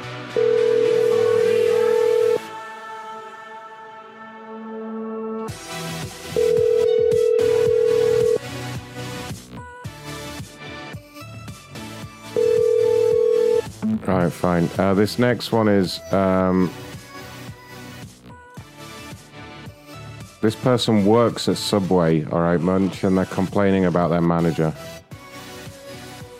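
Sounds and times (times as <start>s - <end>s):
unanswered telephone call ringback tone: 0.3s - 2.5s, 6.3s - 8.4s, 12.3s - 14.0s
speech: 14.4s - 16.8s, 20.5s - 25.0s.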